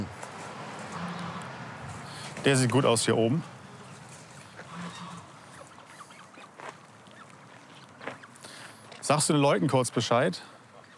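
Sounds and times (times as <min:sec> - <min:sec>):
steady outdoor noise: 0:00.0 - 0:10.9
goose family honking: 0:00.8 - 0:09.0
speech: 0:02.4 - 0:03.6, 0:09.1 - 0:10.6.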